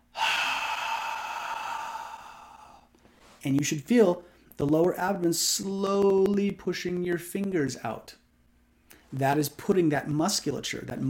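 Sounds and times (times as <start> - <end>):
slow deep exhale through open mouth during belly-breathing exercise: 0.1 - 2.9
speech: 3.4 - 8.2, 9.1 - 11.0.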